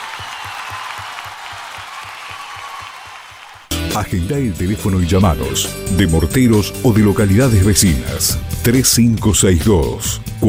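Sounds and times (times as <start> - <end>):
audience applause: 0.0 - 3.8
speech: 4.0 - 10.4.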